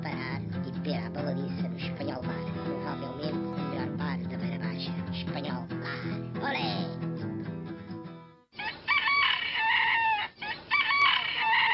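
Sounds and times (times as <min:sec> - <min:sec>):
brief burst of music: 0:00.0 - 0:08.5
rooster crowing loudly: 0:08.6 - 0:11.7.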